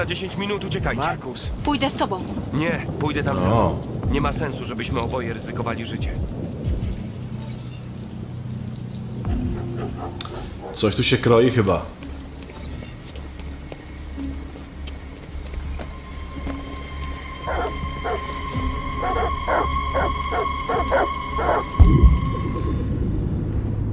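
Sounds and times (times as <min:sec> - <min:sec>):
speech: 0:00.0 - 0:06.4, 0:10.0 - 0:12.0
rumble: 0:00.0 - 0:23.9
dogs barking: 0:09.3 - 0:11.0, 0:17.2 - 0:22.5
dogs whimpering and whining: 0:17.5 - 0:22.4.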